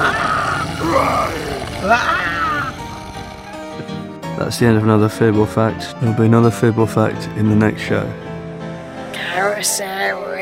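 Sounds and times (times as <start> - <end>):
person imitating a monster's roar with the voice: 0.0 - 3.7
speech: 0.9 - 2.2, 4.4 - 8.2, 9.4 - 10.3.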